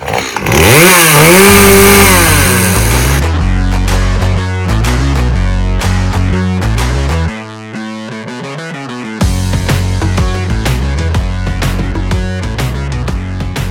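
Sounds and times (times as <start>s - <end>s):
chainsaw revving: 0.0s - 3.2s
rhythmic music with a pulsing bass line: 0.6s - 13.7s.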